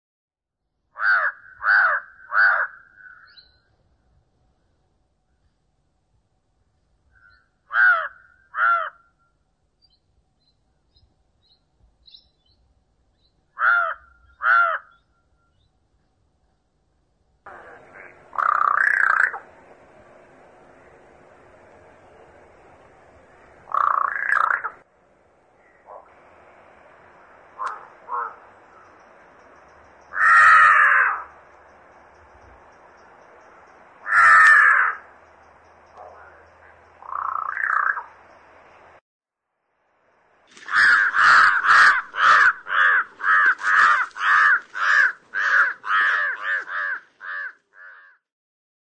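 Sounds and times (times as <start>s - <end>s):
jungle crow calling: 1.0s - 3.5s, 7.2s - 9.2s, 13.6s - 15.1s, 17.5s - 19.6s, 23.3s - 24.8s, 27.5s - 31.5s, 34.0s - 35.3s, 35.9s - 38.2s, 40.5s - 48.3s.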